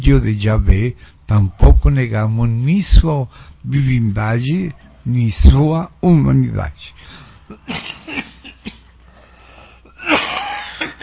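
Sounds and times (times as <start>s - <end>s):
speech: 0.1s - 8.0s
wheezy breaths: 7.0s - 7.5s, 9.0s - 10.0s
harsh coughing: 7.4s - 9.0s, 9.8s - 11.0s.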